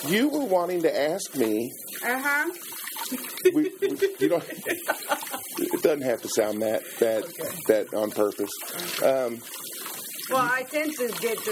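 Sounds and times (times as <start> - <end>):
running tap water as dishes are washed at a kitchen counter: 0.0 - 11.4
speech: 0.0 - 11.4
laughter: 3.2 - 6.0.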